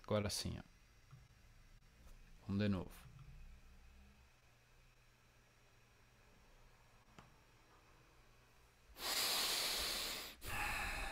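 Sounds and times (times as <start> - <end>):
speech: 0.1 - 0.7, 2.5 - 3.1
close-miked deep breaths during breathwork exercise: 8.9 - 11.0.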